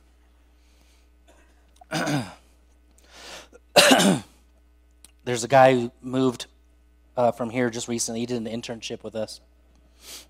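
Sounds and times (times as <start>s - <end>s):
throat clearing: 1.3s - 2.4s, 3.8s - 4.3s
speech: 5.3s - 6.5s, 7.2s - 10.2s.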